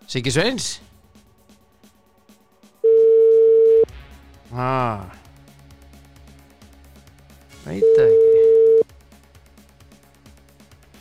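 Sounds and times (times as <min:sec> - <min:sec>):
speech: 0:00.1 - 0:00.9, 0:04.5 - 0:05.2, 0:07.6 - 0:08.3
telephone ringback tone while calling someone: 0:02.8 - 0:03.9, 0:07.8 - 0:08.8.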